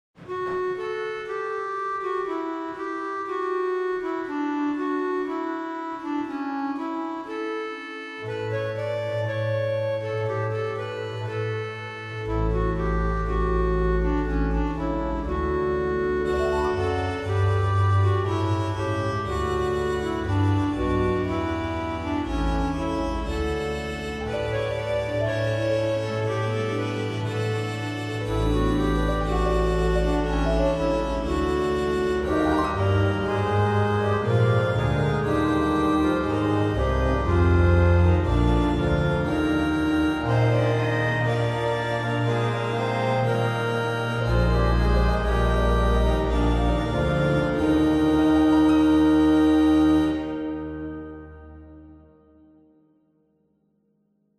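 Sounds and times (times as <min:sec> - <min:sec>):
organ reeds: 0:00.3 - 0:52.3.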